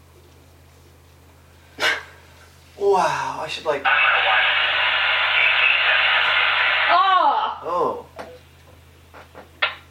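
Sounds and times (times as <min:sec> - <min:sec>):
speech: 0:02.8 - 0:04.4
radio static hissing over a transmission: 0:03.4 - 0:07.2.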